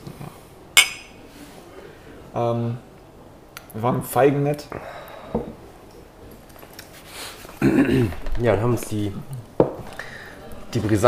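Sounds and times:
glasses clinking in a toast: 0.8s - 1.2s
speech: 2.4s - 2.9s, 3.7s - 5.5s, 7.7s - 9.5s, 10.8s - 11.0s.

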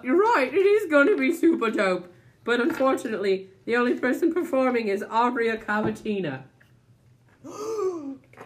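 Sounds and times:
speech: 0.0s - 6.5s, 7.4s - 8.1s
person gasping in recognition: 7.4s - 8.2s.

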